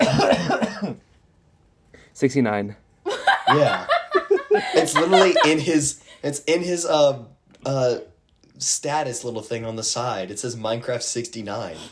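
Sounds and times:
person coughing: 0:00.0 - 0:01.0
speech: 0:02.2 - 0:02.8, 0:03.5 - 0:03.9, 0:04.6 - 0:11.8
laughter: 0:03.1 - 0:06.2.

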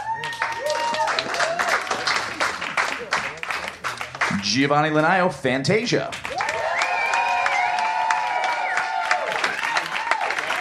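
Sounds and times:
scattered whoops and cheers: 0:00.0 - 0:02.0, 0:06.3 - 0:10.6
crowd applauding: 0:00.0 - 0:05.1, 0:06.1 - 0:10.6
speech: 0:04.5 - 0:06.2.

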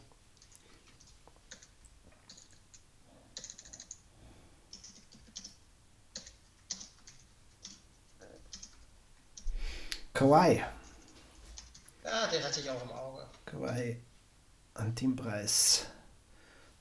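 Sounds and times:
typing on a computer keyboard: 0:00.4 - 0:04.0, 0:04.7 - 0:09.5, 0:10.8 - 0:11.9
speech: 0:10.2 - 0:10.8, 0:12.3 - 0:14.1, 0:14.8 - 0:15.9.

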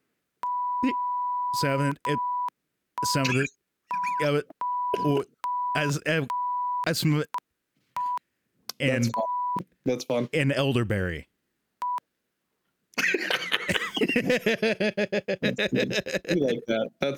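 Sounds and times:
censoring bleeps: 0:00.4 - 0:07.4, 0:08.0 - 0:08.2, 0:08.9 - 0:09.6
speech: 0:00.8 - 0:02.3, 0:03.0 - 0:07.4, 0:08.8 - 0:11.3, 0:14.2 - 0:17.1
laughter: 0:13.0 - 0:17.1.

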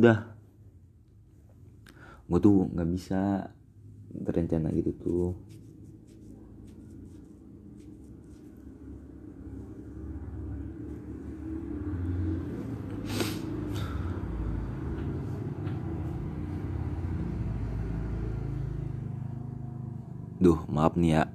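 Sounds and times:
speech: 0:00.0 - 0:00.3, 0:02.3 - 0:05.6, 0:20.4 - 0:21.3
motorcycle engines and exhausts rumbling on the street beside a bedroom: 0:08.1 - 0:21.3.

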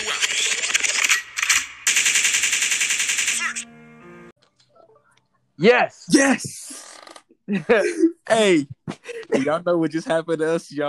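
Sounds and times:
gunshot sound effect: 0:00.0 - 0:03.6
burst of automatic fire: 0:00.9 - 0:03.6
speech: 0:05.6 - 0:06.7, 0:07.5 - 0:10.8.

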